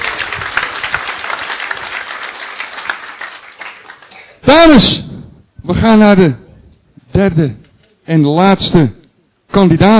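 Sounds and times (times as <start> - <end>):
audience applause: 0.0 - 4.2
speech: 4.5 - 5.0, 5.7 - 6.4, 7.2 - 9.9.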